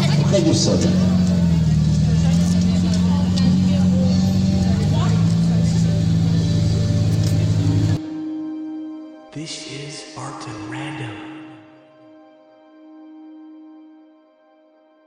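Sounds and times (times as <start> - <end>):
crowd murmur: 0.0 - 8.0
race car giving passenger rides droning as it moves off: 0.0 - 8.0
speech: 0.3 - 1.2.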